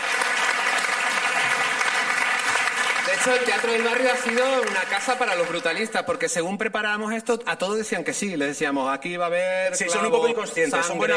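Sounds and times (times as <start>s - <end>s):
audience applause at a theater award event: 0.0s - 6.2s
speech: 3.1s - 11.1s.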